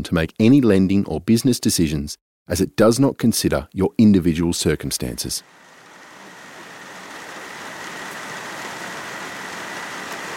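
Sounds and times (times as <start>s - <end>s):
speech: 0.0s - 5.7s
steady rain falling outdoors: 5.4s - 10.3s.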